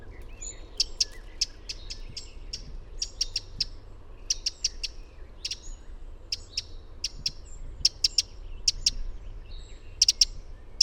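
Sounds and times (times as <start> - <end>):
Eurasian wren Troglodytes troglodytes calling: 0.0 - 10.8.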